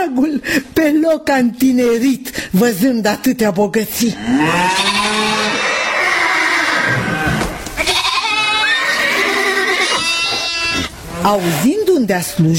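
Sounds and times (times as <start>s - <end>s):
speech: 0.0s - 4.9s, 11.2s - 12.5s
sheep bleating: 4.2s - 11.3s
cattle mooing: 4.2s - 11.4s
horses neighing and whinnying: 4.2s - 11.6s.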